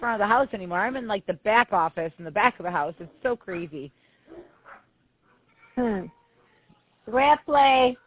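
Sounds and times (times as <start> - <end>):
speech: 0.0 - 4.5, 5.8 - 6.2, 7.1 - 8.0
dog loud sharp bark with a whining edge: 4.3 - 4.9.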